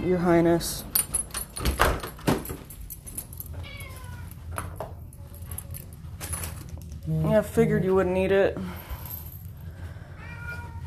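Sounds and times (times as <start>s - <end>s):
speech: 0.0s - 1.0s, 1.6s - 2.1s, 7.1s - 8.8s
steady low hum: 0.0s - 10.8s
male cat meowing: 3.6s - 4.3s, 10.2s - 10.8s.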